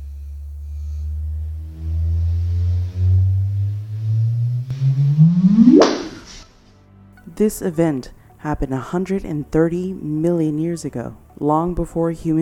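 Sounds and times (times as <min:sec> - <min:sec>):
sonified gravitational-wave signal from two colliding neutron stars: 0:00.2 - 0:06.4
speech: 0:07.4 - 0:12.3.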